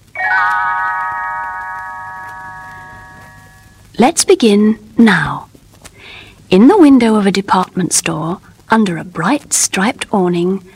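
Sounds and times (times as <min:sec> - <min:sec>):
small bells chime signalling a page turn in a read-along storybook: 0:00.2 - 0:03.8
speech: 0:04.0 - 0:05.5, 0:06.5 - 0:10.7.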